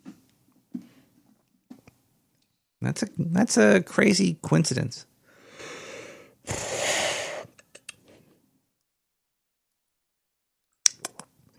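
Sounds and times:
speech: 0:02.8 - 0:05.1
heavy breathing: 0:05.2 - 0:08.4
wet mouth clicks and smacks: 0:07.5 - 0:08.1, 0:10.9 - 0:11.3.

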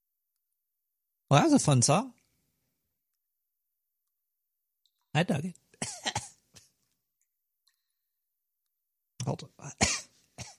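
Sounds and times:
speech: 0:01.3 - 0:02.2, 0:05.2 - 0:06.1, 0:09.3 - 0:10.0
sharp coughs right up on the microphone: 0:05.8 - 0:06.4, 0:09.8 - 0:10.5.

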